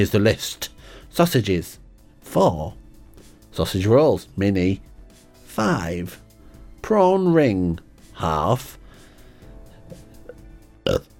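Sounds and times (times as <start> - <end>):
speech: 0.0 - 2.8, 3.6 - 4.9, 5.6 - 6.2, 6.8 - 8.8, 10.9 - 11.1
person burping after eating: 9.9 - 11.1.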